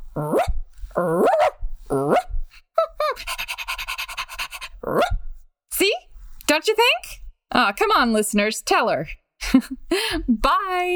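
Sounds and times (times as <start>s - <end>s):
person imitating wire-haired fox terrier barks: 0.1s - 5.2s
speech: 0.2s - 1.3s, 7.6s - 10.9s.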